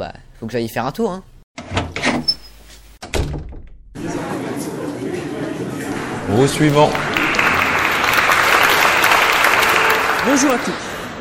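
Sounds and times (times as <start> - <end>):
speech: 0.0 - 1.3, 6.3 - 7.1, 10.3 - 10.9
door clunking and swinging open: 1.6 - 4.0
crowd chatter: 4.0 - 11.1.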